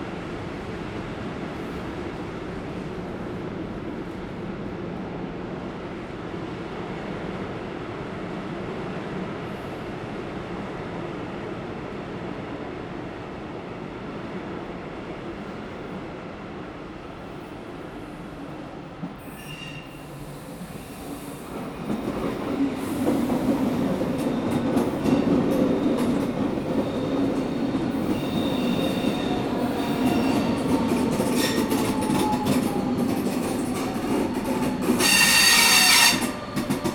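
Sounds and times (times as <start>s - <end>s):
S-Bahn commuter train arriving at a station in Hildesheim, Germany: 0.0s - 36.9s
brief high wheel squeal: 19.3s - 20.0s, 35.0s - 36.4s.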